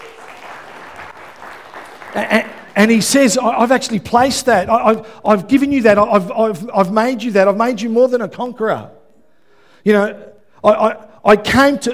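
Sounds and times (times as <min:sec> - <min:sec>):
audience applause: 0:00.0 - 0:03.4
speech: 0:02.2 - 0:09.0, 0:09.8 - 0:11.9.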